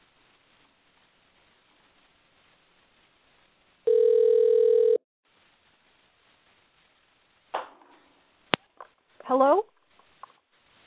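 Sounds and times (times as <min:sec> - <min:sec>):
hissing phone line: 0:03.8 - 0:05.0
telephone ringback tone over a phone line: 0:03.9 - 0:05.0
speech: 0:09.3 - 0:09.7.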